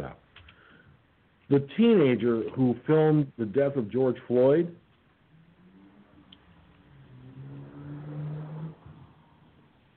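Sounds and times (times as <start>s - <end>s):
speech: 1.5s - 4.8s
car driving past outside: 5.3s - 9.9s.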